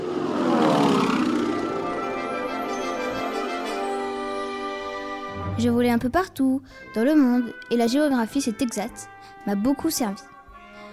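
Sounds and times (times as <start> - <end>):
propeller airplane droning overhead: 0.0 - 5.4
speech: 5.6 - 10.3.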